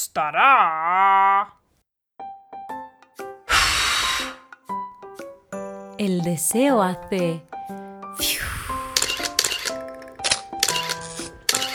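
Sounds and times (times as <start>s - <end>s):
speech: 0.1s - 1.6s, 6.0s - 7.6s, 8.2s - 8.6s
descending swoosh: 8.2s - 9.1s
camera shutter clicks: 9.0s - 11.7s.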